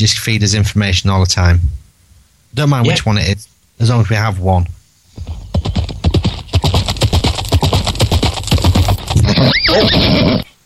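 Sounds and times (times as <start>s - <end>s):
speech: 0.0s - 1.8s, 2.5s - 5.8s, 9.4s - 10.5s
horses clip-clopping as riders leave town: 5.2s - 9.8s
horse whinnying: 9.2s - 10.6s.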